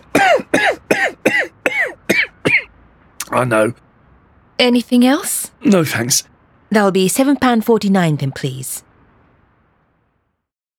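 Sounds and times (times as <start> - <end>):
loud hacking coughs: 0.0 - 2.7
speech: 3.4 - 3.9, 4.6 - 8.9.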